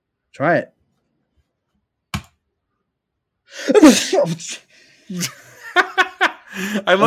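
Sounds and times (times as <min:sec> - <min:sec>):
speech: 0:00.4 - 0:00.8, 0:03.7 - 0:05.9, 0:06.5 - 0:07.0
video game character sneezing: 0:03.6 - 0:04.6
laughter: 0:03.7 - 0:07.0.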